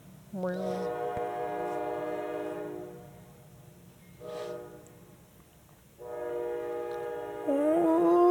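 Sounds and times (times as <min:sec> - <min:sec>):
passing train horn blasts: 0:00.5 - 0:03.5, 0:04.2 - 0:05.2, 0:06.0 - 0:08.1.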